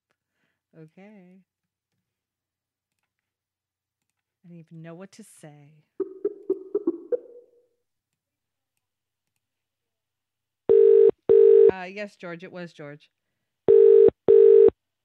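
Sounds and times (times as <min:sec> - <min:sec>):
speech: 0:00.7 - 0:01.6, 0:04.4 - 0:06.0, 0:11.7 - 0:13.2
telephone ringing: 0:10.7 - 0:11.7, 0:13.7 - 0:14.8.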